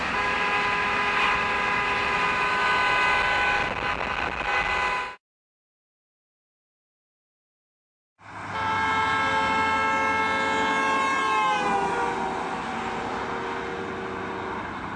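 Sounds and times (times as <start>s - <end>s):
car horn blaring while moving at speed along a road: 0.1s - 5.2s, 8.5s - 14.8s.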